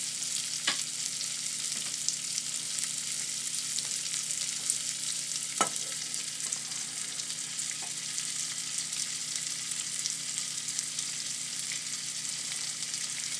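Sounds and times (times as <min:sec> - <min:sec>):
raisins and chopped apricots sizzling in a frying pan: 0:00.0 - 0:13.3.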